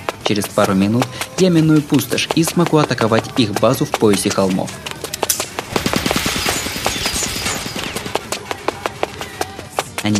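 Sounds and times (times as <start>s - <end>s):
speech: 0.3s - 4.9s
automatic gunfire: 5.6s - 8.3s.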